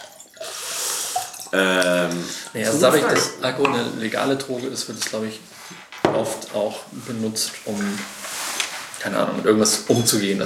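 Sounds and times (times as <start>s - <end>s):
person drinking a glass of water: 0.0s - 3.8s
speech: 1.5s - 8.2s, 9.0s - 10.4s.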